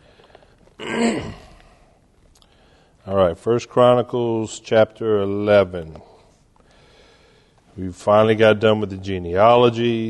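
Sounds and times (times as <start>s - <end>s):
person clearing a tickle from their throat: 0.8s - 1.7s
speech: 1.0s - 1.4s, 3.1s - 6.1s, 7.8s - 10.0s.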